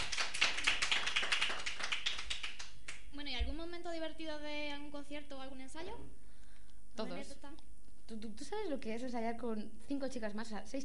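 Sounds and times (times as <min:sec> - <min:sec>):
small studio audience clapping hands rhythmically while dancing: 0:00.0 - 0:03.1
speech: 0:03.4 - 0:06.2, 0:07.0 - 0:10.8.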